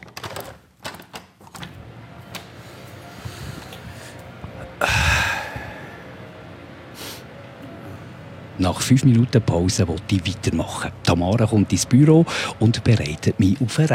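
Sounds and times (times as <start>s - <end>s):
window handle and frame clicking and rattling open: 0.0s - 1.8s
loud deep breathing: 2.4s - 8.4s, 12.3s - 12.6s
speech: 8.6s - 13.9s.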